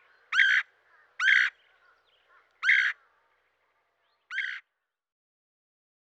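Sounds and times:
red-headed woodpecker giving harsh calls: 0.0 - 3.2, 4.3 - 4.7.

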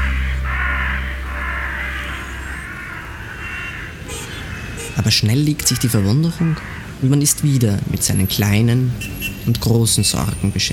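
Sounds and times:
low rumble: 0.0 - 3.6
huge flock of black crows cawing while settling on rooftops: 0.0 - 7.6
speech: 5.0 - 10.7.

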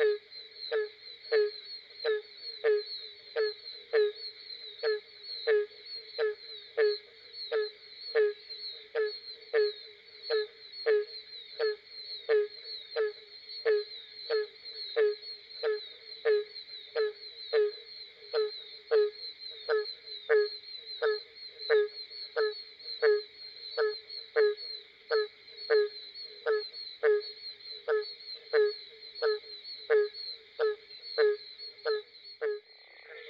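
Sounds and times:
barking tree frog calling in a southern swamp at night: 0.0 - 33.2.

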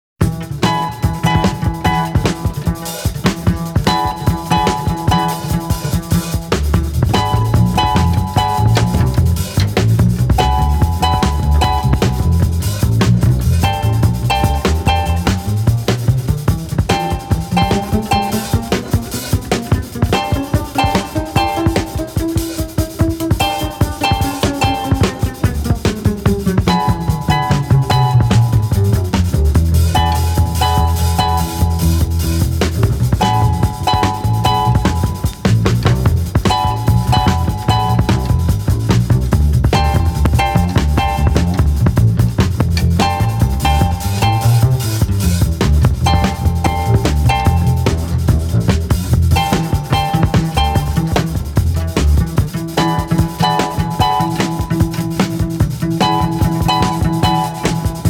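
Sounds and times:
harp beat: 0.2 - 58.0.

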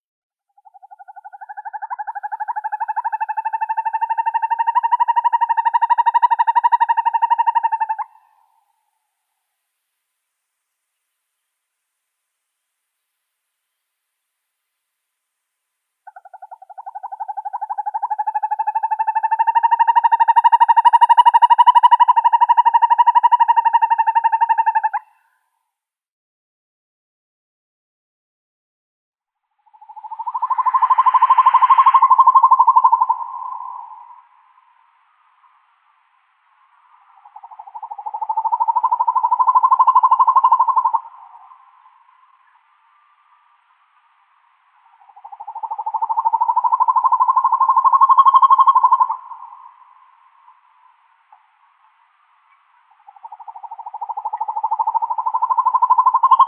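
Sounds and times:
northern hawk owl Surnia ulula sounds: 0.6 - 8.7, 16.0 - 25.2, 29.6 - 34.8, 36.7 - 42.7, 44.7 - 56.4.

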